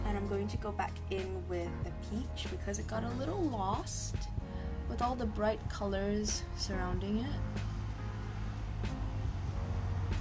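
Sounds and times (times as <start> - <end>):
speech: 0.1 - 4.3, 4.9 - 7.7
road traffic rumble from outside: 3.3 - 10.1
vehicles whooshing past: 6.4 - 10.1.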